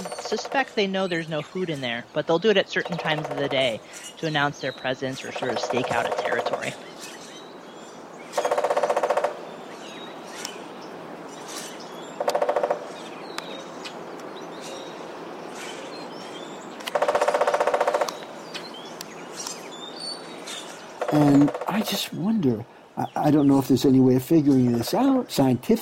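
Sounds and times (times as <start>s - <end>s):
woodpecker drumming on hollow metal: 0.0s - 0.8s, 2.8s - 4.1s, 5.2s - 6.8s, 8.3s - 9.4s, 12.2s - 13.1s, 16.9s - 18.2s, 21.0s - 21.9s
birds chirping: 0.0s - 25.8s
speech: 0.3s - 6.9s, 22.1s - 25.8s.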